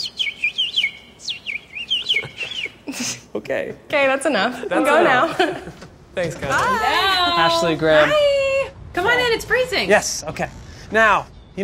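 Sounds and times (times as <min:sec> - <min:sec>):
person whistling an imitation of bird chirping: 0:00.1 - 0:02.8
laughter: 0:02.1 - 0:03.2, 0:04.6 - 0:05.8
speech: 0:02.9 - 0:08.3, 0:09.0 - 0:11.6.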